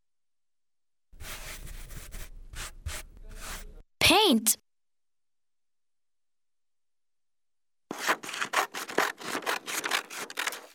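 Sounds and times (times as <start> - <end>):
speech: 4.2 - 4.6
scissors cutting through paper: 7.9 - 10.7.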